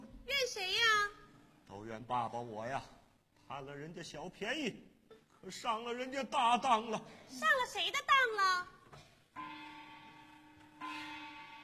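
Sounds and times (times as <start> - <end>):
speech: 0.5 - 0.8, 1.7 - 9.0
work bell ringing: 9.4 - 11.6.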